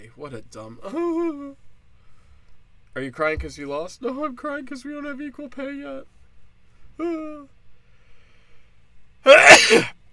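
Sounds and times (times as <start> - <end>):
speech: 0.1 - 1.6, 2.9 - 6.2, 7.0 - 7.6, 9.2 - 10.0
person sneezing: 9.3 - 10.0.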